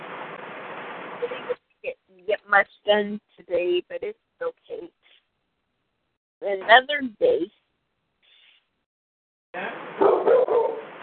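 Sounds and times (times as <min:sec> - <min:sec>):
speech: 0:01.2 - 0:01.6, 0:02.5 - 0:05.0, 0:06.4 - 0:07.6, 0:09.6 - 0:10.4
dog barking: 0:10.0 - 0:10.9.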